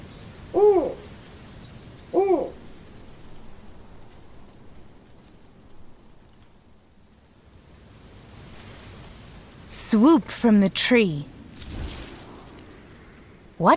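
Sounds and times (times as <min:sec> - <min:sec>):
steady quiet hiss: 0:00.0 - 0:13.7
owl hooting at night: 0:00.5 - 0:01.1, 0:02.1 - 0:02.6
speech: 0:09.9 - 0:11.3, 0:13.6 - 0:13.7.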